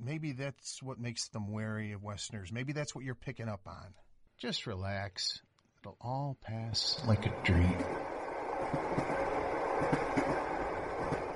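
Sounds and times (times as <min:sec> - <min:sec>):
speech: 0:00.0 - 0:09.1
train rolling along the rails with a rumbling roar: 0:06.8 - 0:11.3
faint rhythmic clacks and thumps of train wheels: 0:07.0 - 0:11.3.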